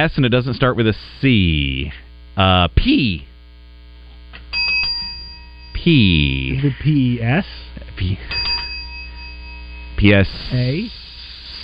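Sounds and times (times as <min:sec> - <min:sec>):
speech: 0:00.0 - 0:03.3, 0:05.8 - 0:08.5, 0:10.0 - 0:11.0
small bell being rung: 0:04.5 - 0:06.6, 0:08.2 - 0:10.3.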